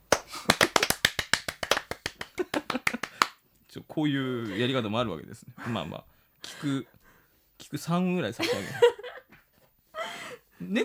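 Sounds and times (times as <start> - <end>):
sparse clapping from a small scattered group: 0.1 - 3.4
speech: 4.0 - 7.0, 7.7 - 9.0, 10.6 - 10.8.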